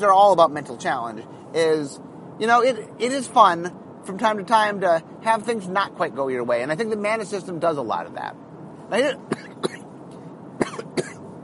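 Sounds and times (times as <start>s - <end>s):
speech: 0.0s - 9.8s
person coughing: 9.3s - 9.9s, 10.6s - 11.2s.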